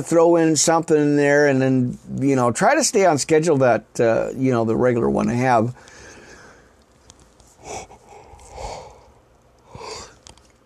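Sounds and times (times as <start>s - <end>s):
speech: 0.0s - 5.9s
person yawning: 7.6s - 9.1s, 9.7s - 10.2s.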